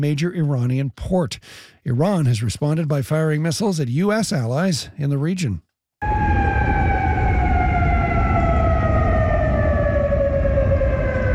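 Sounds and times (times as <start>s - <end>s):
speech: 0.0s - 6.2s
air raid sirens wailing across a city: 6.0s - 11.3s.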